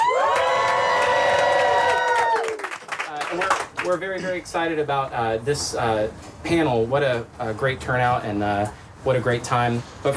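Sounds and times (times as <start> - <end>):
live audience at a store cheering and whooping: 0.0 - 2.8
speech: 3.9 - 10.1.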